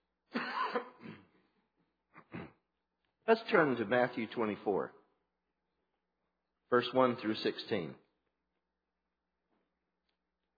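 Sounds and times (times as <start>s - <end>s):
harsh coughing from something caught in the throat: 0.3s - 1.5s, 2.1s - 2.7s
speech: 3.3s - 5.0s, 6.7s - 8.0s.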